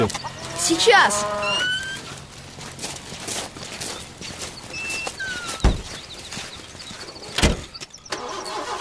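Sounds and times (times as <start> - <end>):
speech: 0.0 - 1.8
light chirping effects: 0.0 - 2.6, 3.5 - 8.7
sharp thuds: 5.6 - 6.0
car engine failing to start: 7.2 - 8.7.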